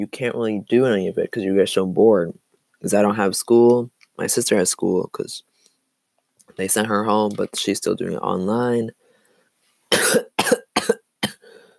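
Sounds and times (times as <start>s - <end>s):
speech: 0.0s - 5.5s, 6.5s - 9.0s, 10.1s - 10.3s
faint breathy trailing sound: 8.9s - 9.9s, 11.4s - 11.7s
harsh raspy coughs: 9.9s - 11.6s.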